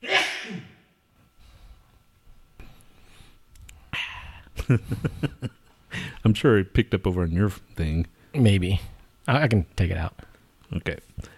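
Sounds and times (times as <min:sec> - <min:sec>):
person sneezing: 0:00.0 - 0:00.9
quiet breathing: 0:01.1 - 0:05.2, 0:05.8 - 0:06.3, 0:10.2 - 0:11.3
speech: 0:04.7 - 0:05.6, 0:06.2 - 0:11.3.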